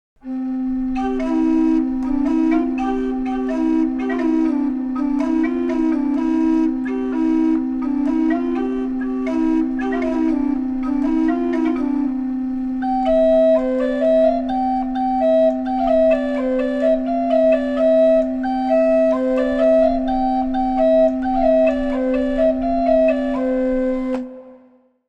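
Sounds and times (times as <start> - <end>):
organetto playing: 0.2 - 24.5.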